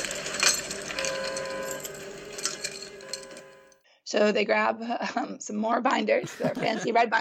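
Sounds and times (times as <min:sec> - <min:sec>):
ICBM launch control keys being inserted: 0:00.0 - 0:03.6
speech: 0:04.1 - 0:07.1
laughter: 0:06.2 - 0:07.1.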